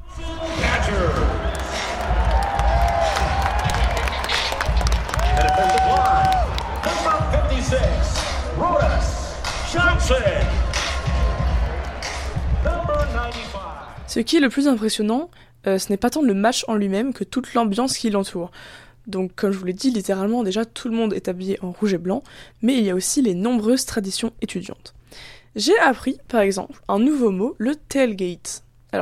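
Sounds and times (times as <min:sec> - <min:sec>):
shouts in stadium crowd: 0:00.0 - 0:14.0
large stadium crowd roaring and cheering as players enter: 0:00.0 - 0:14.2
scattered clapping in stadium crowd: 0:00.4 - 0:14.0
speech: 0:09.8 - 0:10.6, 0:13.3 - 0:29.0.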